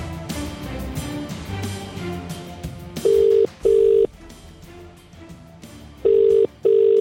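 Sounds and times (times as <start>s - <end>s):
soft music: 0.0s - 6.9s
outgoing phone call ringing in double-burst pattern: 3.1s - 4.1s, 6.0s - 6.9s.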